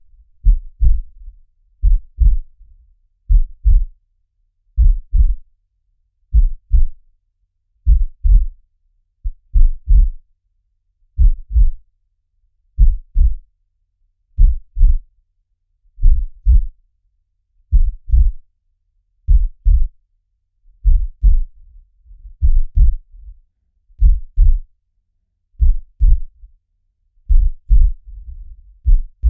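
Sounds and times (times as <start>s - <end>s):
medium slow heartbeat: 0.0s - 2.6s, 3.3s - 4.0s, 4.8s - 5.4s, 6.3s - 7.0s, 7.9s - 8.6s, 9.2s - 10.2s, 11.2s - 11.8s, 12.8s - 13.4s, 14.4s - 15.0s, 16.0s - 16.8s, 17.7s - 18.4s, 19.3s - 20.0s, 20.8s - 23.4s, 24.0s - 24.7s, 25.6s - 26.5s, 27.3s - 29.2s.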